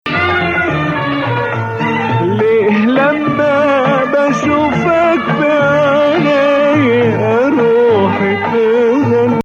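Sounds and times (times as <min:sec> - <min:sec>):
maqam melody: 0:00.1 - 0:09.4.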